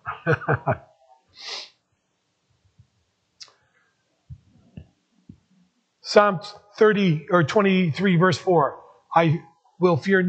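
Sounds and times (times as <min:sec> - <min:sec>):
laughter: 0:00.0 - 0:00.8
speech: 0:00.2 - 0:01.6, 0:06.1 - 0:10.2
faint sniffs: 0:01.4 - 0:01.7
nose blowing due to allergies: 0:01.4 - 0:01.7
snorty nasal bursts: 0:01.4 - 0:01.7.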